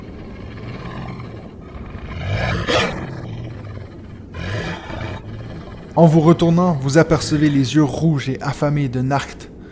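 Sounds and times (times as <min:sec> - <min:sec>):
deep menacing wolf growl and snarl: 0:00.0 - 0:06.6
speech: 0:06.0 - 0:09.5.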